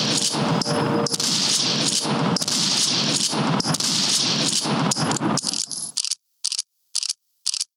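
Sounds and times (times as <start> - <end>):
gunshot sound effect of rapid gunfire: 0.0 - 5.7.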